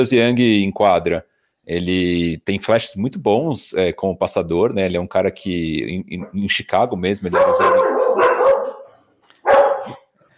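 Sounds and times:
speech: 0.0 - 8.3
dogs barking: 7.3 - 10.0.

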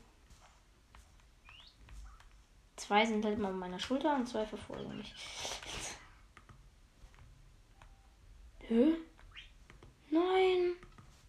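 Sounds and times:
soft clicking and patter: 0.0 - 8.4, 9.1 - 11.2
video game parrot chirps: 1.4 - 1.8, 9.2 - 9.6
speech: 2.9 - 5.6.

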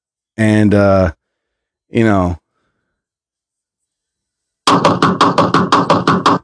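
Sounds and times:
speech: 0.4 - 1.2, 1.9 - 2.4, 4.7 - 5.2
imitated loud heavy knocking on a door: 4.7 - 6.4.

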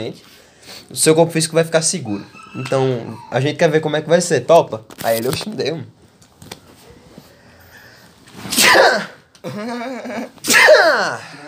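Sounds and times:
speech: 0.0 - 6.0, 9.4 - 11.4
person sneezing: 8.4 - 9.6, 10.2 - 11.4
laughter: 9.4 - 10.4.

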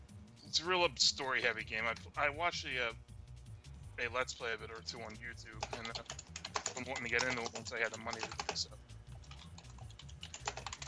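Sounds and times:
speech: 0.5 - 3.1, 4.0 - 8.9
hard typing on a computer keyboard: 5.0 - 10.8.

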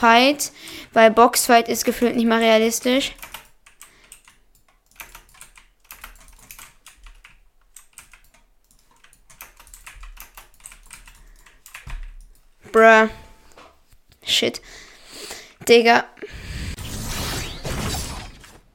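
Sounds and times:
speech: 0.0 - 3.3, 12.8 - 13.2, 14.3 - 14.8, 15.7 - 16.4
computer keyboard keys clattering during video gaming: 1.8 - 12.4.

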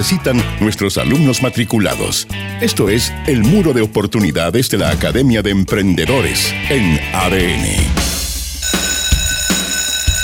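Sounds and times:
speech: 0.0 - 8.1
loud electric bell ringing: 8.6 - 10.2.

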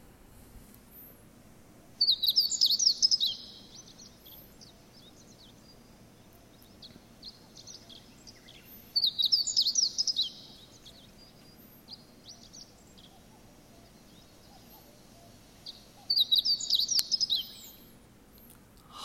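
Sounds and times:
meadow bunting singing high chirping phrases: 1.9 - 19.0.

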